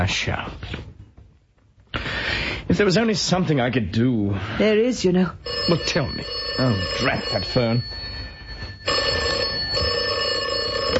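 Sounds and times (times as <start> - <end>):
speech: 0.0 - 0.9, 2.7 - 8.0
old-fashioned telephone bell ringing: 5.4 - 10.9.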